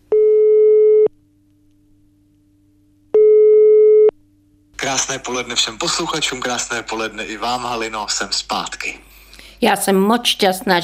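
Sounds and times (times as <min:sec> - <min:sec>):
telephone ringing tone as a call is placed: 0:00.1 - 0:01.1, 0:03.2 - 0:04.1
speech: 0:04.8 - 0:10.8.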